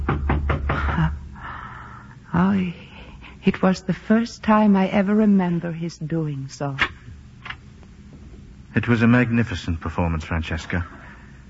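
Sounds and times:
firm knocking on a door: 0.0 - 1.1
speech: 2.4 - 6.9, 8.8 - 11.0.

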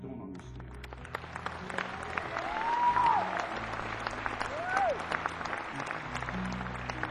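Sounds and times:
audience applause: 0.6 - 7.0
whistles from audience: 2.4 - 3.4.

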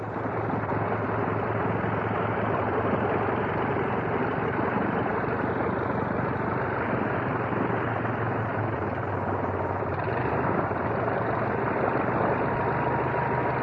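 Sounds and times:
vintage OX-5 V8 aircraft engine idling: 0.0 - 13.5.

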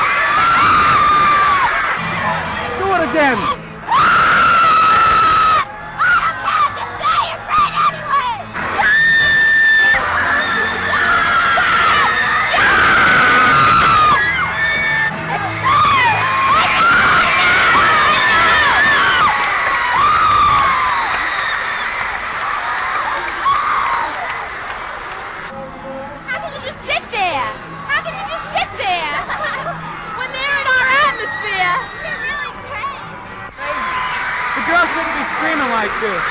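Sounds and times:
large crowd screaming: 0.0 - 25.5, 27.1 - 36.2
speech: 3.1 - 3.6
laughter: 28.8 - 30.0.

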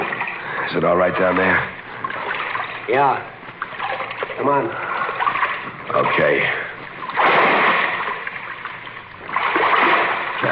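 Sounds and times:
water sloshing and churning: 0.0 - 10.5
speech: 0.7 - 1.8, 2.9 - 3.3, 4.4 - 4.9, 5.9 - 6.6
heavy splash of someone dropping into waist-deep water in the dark: 7.1 - 8.4, 9.4 - 10.5.

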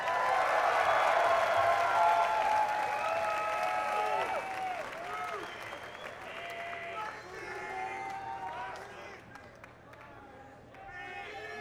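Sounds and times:
crowd whooping and cheering: 0.0 - 6.0
crowd applause: 0.0 - 8.9.

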